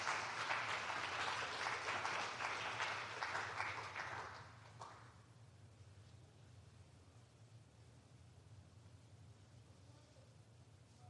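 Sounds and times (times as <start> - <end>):
room full of people applauding: 0.0 - 5.1.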